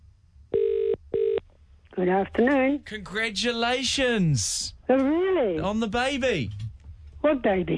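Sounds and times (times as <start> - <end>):
phone line ringback tone on an outgoing call: 0.5 - 1.4
speech: 2.0 - 6.6, 7.2 - 7.7.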